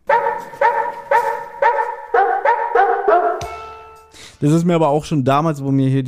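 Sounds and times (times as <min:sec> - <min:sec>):
dog barking in a radio play: 0:00.0 - 0:03.5
speech: 0:04.4 - 0:06.0.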